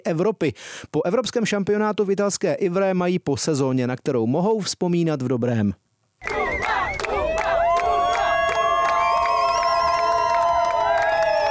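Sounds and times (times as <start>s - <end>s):
speech: 0.0s - 6.6s
canoe slalom teammates cheering and chanting names at a European championship: 6.2s - 11.4s.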